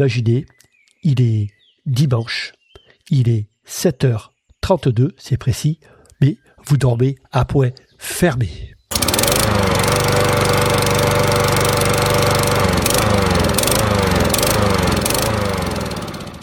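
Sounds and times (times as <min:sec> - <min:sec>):
speech: 0:00.0 - 0:08.7
lawn mower engine running early on a Sunday morning: 0:08.9 - 0:16.4.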